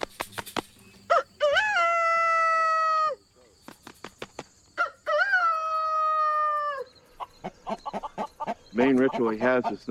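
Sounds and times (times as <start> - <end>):
flapping-like clatter: 0.0 - 0.8, 3.6 - 4.6
rooster crowing: 1.1 - 3.2, 4.8 - 7.0
speech: 8.8 - 9.8.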